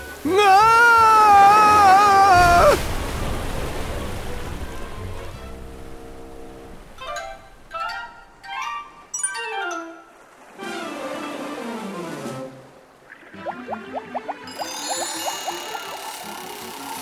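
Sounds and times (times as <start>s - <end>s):
rush of churning sea water: 0.0s - 17.0s
speech: 0.2s - 0.6s
gurgling bursts of rising bubbles: 13.1s - 17.0s
wavering downward sliding tone: 13.4s - 17.0s.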